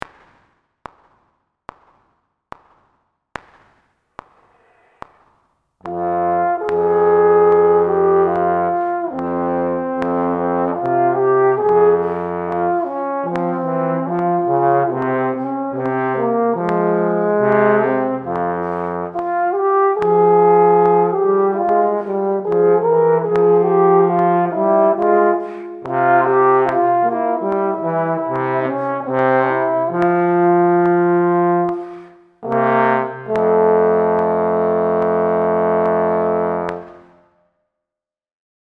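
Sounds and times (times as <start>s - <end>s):
trombone in F minor: 5.9s - 37.2s.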